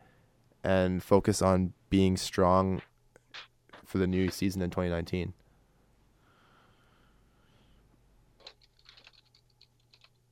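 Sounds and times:
speech: 0.6 - 5.4
typing on a computer keyboard: 8.4 - 10.2.

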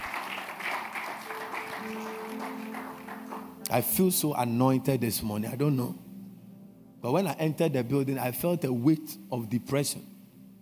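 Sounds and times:
audience applauding: 0.0 - 3.7
faint sustained musical tone: 0.1 - 10.5
speech: 3.7 - 6.0, 7.0 - 10.5.

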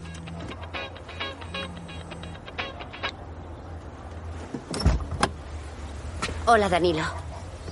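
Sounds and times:
car engine idling with a low steady hum: 0.0 - 3.1
car door opening and thumping shut: 4.5 - 5.4
speech: 6.5 - 7.2.

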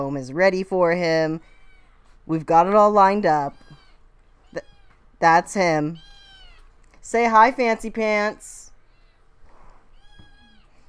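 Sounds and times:
speech: 0.0 - 1.6, 2.3 - 3.7, 4.5 - 6.1, 7.0 - 8.6
cat meowing: 3.5 - 5.0, 6.0 - 6.8, 9.9 - 10.8.

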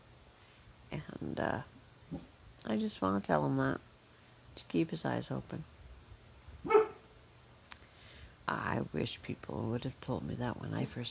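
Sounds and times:
speech: 1.2 - 3.9, 4.6 - 5.7, 8.8 - 11.1
dog barking on the patio: 6.6 - 7.1
faint click: 7.6 - 7.9.

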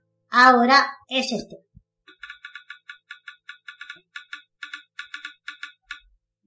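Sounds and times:
speech: 0.4 - 1.7
smartphone screen reader empty-area navigation ticks: 2.1 - 6.1.

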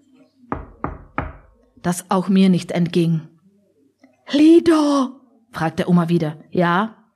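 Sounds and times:
knocking on a door: 0.5 - 1.6
speech: 1.8 - 3.3, 4.3 - 7.0.

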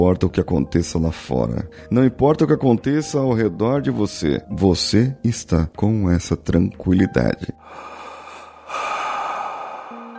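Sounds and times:
speech: 0.0 - 7.9
deep airy inhale: 7.6 - 10.1.

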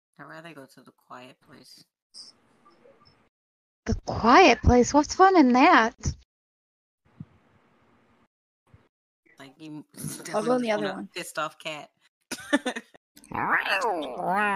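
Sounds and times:
speech: 0.2 - 2.4, 3.9 - 6.2, 9.4 - 14.5
person imitating an angry cat yowling: 13.4 - 14.5.

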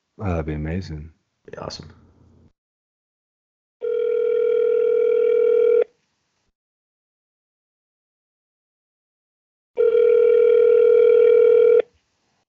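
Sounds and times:
speech: 0.2 - 2.0
phone ringing out on speakerphone: 3.8 - 5.9, 9.8 - 11.9.

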